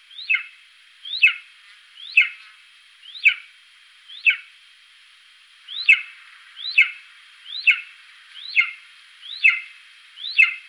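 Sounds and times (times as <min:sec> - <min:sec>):
golden eagle calling a rising then falling yelp: 0:00.2 - 0:02.4, 0:03.1 - 0:03.5, 0:04.1 - 0:04.5, 0:05.7 - 0:10.6.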